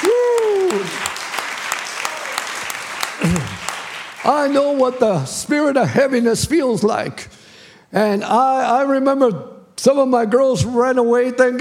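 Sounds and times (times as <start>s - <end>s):
crowd clapping in dense sustained applause: 0.0s - 5.5s
speech: 4.3s - 11.5s.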